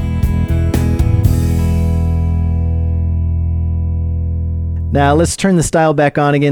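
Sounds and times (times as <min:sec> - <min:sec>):
quick electronic keyboard accompaniment drum hits: 0:00.0 - 0:01.9
electronic keyboard held chord ringing out: 0:00.0 - 0:04.9
speech: 0:04.9 - 0:06.5.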